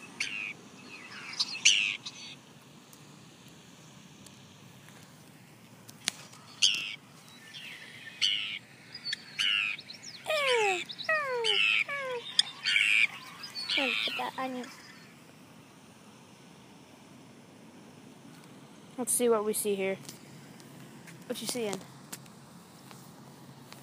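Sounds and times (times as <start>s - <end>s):
Forster's tern giving harsh grating downward-slurred calls across a bank: 0.0s - 2.6s, 6.1s - 15.4s
faint outdoor background: 0.0s - 23.8s
speech: 14.2s - 14.8s, 19.0s - 20.2s, 21.3s - 21.9s.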